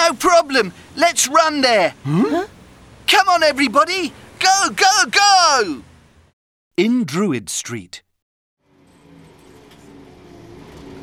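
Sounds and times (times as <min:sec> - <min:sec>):
old bus engine rumbling approaching a bus stop: 0:00.0 - 0:07.9
speech: 0:00.1 - 0:05.9, 0:06.8 - 0:08.0.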